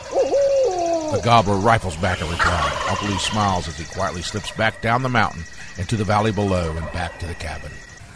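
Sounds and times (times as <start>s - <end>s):
person imitating a barred owl hoot through cupped hands: 0.2s - 1.3s
speech: 1.2s - 7.9s.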